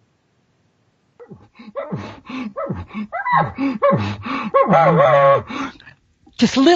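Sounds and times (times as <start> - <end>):
hunter imitating a bull's huffing groan with a reed call: 1.2 - 6.0.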